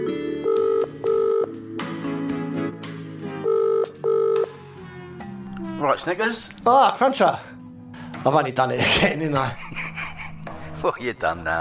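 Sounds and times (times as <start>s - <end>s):
phone line ringing in a double-burst pattern: 0.1s - 1.7s, 3.4s - 4.5s
telephone dialing noise: 0.4s - 1.5s, 3.5s - 4.5s
speech: 5.9s - 7.5s, 8.3s - 9.7s, 10.8s - 11.5s
laughter: 8.8s - 11.0s.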